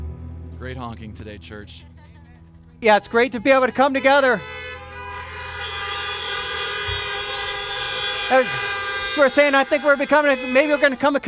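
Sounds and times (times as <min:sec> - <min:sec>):
speech: 0:00.6 - 0:01.9, 0:02.8 - 0:04.6, 0:08.3 - 0:11.2
car horns honking: 0:03.1 - 0:11.2.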